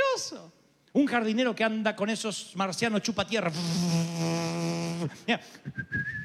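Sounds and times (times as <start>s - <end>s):
speech: 0.2s - 6.2s
person whistling a thin steady rising note: 5.6s - 6.2s.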